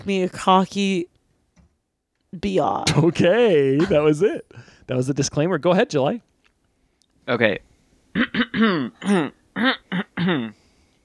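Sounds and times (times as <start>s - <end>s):
speech: 0.0s - 1.1s, 2.3s - 6.3s, 7.2s - 10.6s
person clearing throat: 8.2s - 10.6s.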